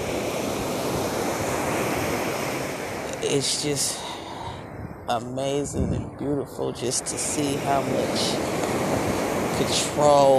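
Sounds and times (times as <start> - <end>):
ocean waves washing as surf: 0.0 - 10.3
speech: 3.2 - 4.1, 5.1 - 10.3.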